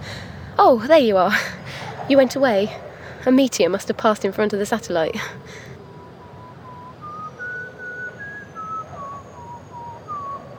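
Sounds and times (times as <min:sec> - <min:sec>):
low rumbling background: 0:00.0 - 0:05.7
speech: 0:00.6 - 0:05.7
person whistling a slow wavering folk-like melody: 0:06.4 - 0:10.5.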